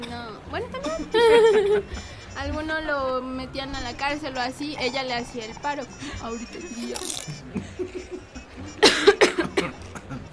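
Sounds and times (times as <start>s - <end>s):
faint murmuring: 0.0s - 8.9s
speech: 0.6s - 8.2s
laughter: 0.8s - 2.4s, 7.4s - 10.3s
person coughing: 8.8s - 10.2s.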